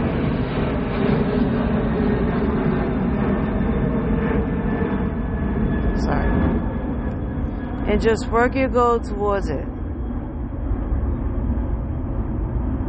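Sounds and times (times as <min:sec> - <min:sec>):
airplane flying overhead: 0:00.0 - 0:12.8
speech: 0:07.9 - 0:09.7.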